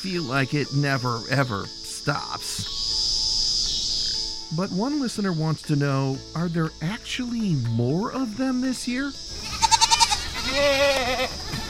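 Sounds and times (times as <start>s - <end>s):
speech: 0.0s - 2.8s, 4.5s - 9.5s, 10.5s - 11.6s
goat bleating: 9.3s - 11.6s.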